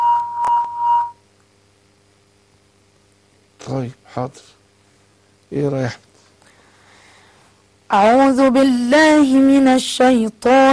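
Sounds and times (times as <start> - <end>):
incoming phone call alert beep: 0.0 - 1.2
speech: 3.8 - 4.6, 5.5 - 6.1, 7.9 - 10.7.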